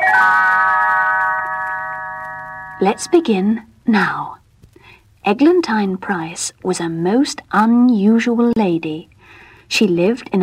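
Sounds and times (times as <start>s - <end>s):
small bell chime ringing as a page-turn signal: 0.0s - 3.2s
speech: 2.8s - 4.4s, 5.2s - 10.4s.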